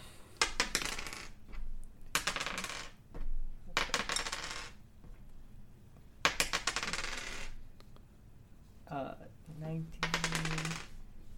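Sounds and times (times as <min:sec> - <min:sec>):
dice rattling across a hard surface: 0:00.4 - 0:01.4, 0:02.1 - 0:03.0, 0:03.8 - 0:04.8, 0:06.2 - 0:07.6, 0:10.0 - 0:11.0.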